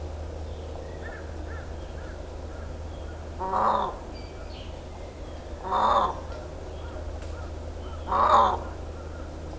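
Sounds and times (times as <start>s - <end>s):
Indian peafowl giving loud wailing calls in Miyakojima: 5.6s - 6.2s, 7.8s - 8.8s.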